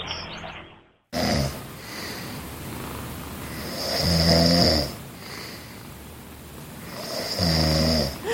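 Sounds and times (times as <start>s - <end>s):
man snoring loudly: 1.2s - 2.5s, 3.4s - 5.9s, 6.8s - 8.3s
cat purring softly: 1.2s - 8.2s.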